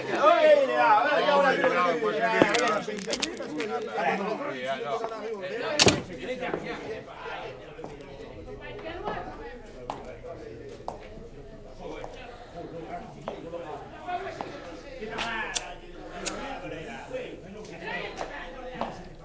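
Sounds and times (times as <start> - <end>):
overlapping voices and murmuring chatter: 0.0 - 19.2
sharp clicks of a door: 5.7 - 6.4
louder thump of a door: 5.8 - 6.4
door opening: 5.8 - 6.5.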